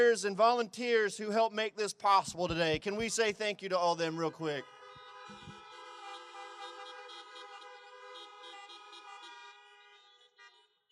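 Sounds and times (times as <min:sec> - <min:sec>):
speech: 0:00.0 - 0:05.4
car horns honking: 0:04.2 - 0:10.9.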